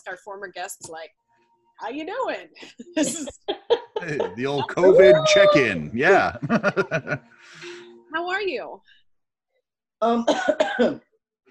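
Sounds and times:
speech: 0.0s - 9.0s, 10.0s - 11.1s
laughter: 2.6s - 7.8s
dry hacking coughs: 4.0s - 7.2s, 10.3s - 11.0s.

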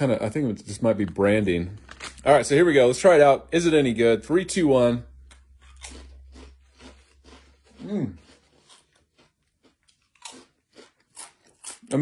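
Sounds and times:
speech: 0.0s - 5.1s, 7.9s - 8.2s
kettle-style potato chips being chewed: 1.0s - 2.5s, 5.2s - 11.9s.

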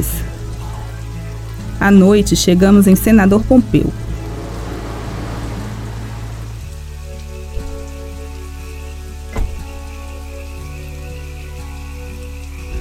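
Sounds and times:
steady rain falling at night in the sertão: 0.0s - 12.7s
speech: 1.8s - 4.0s.

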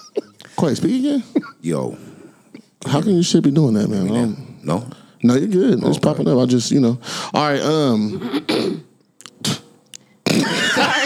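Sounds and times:
speech: 0.6s - 2.1s, 2.9s - 8.8s
person clearing throat in harsh raspy bursts: 8.2s - 8.9s, 10.3s - 10.8s
laughter: 10.3s - 11.0s.

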